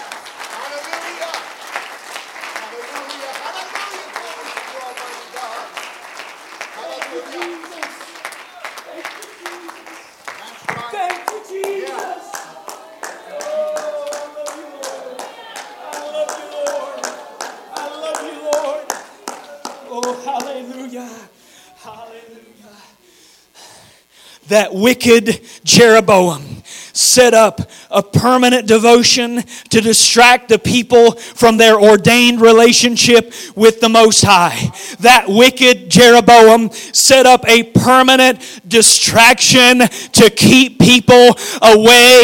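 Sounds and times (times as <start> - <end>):
crowd clapping hands: 0.0 - 21.0
crowd raised voices and shouts: 10.7 - 21.0
speech: 24.5 - 26.4, 27.0 - 42.2.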